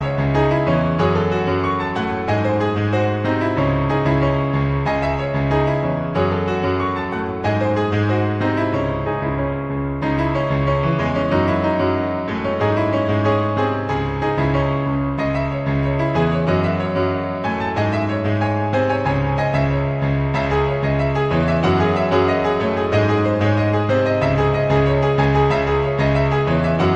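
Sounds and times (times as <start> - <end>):
piano ringtone: 0.0 - 26.9.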